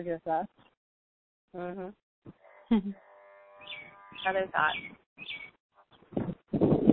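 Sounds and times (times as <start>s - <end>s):
speech: 0.0s - 0.7s, 1.5s - 5.5s
bird calling outdoors: 3.5s - 6.1s.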